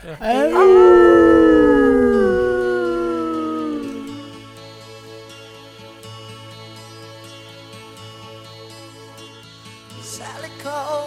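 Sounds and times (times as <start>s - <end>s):
speech: 0.0s - 1.0s
several people howling together: 0.0s - 4.4s.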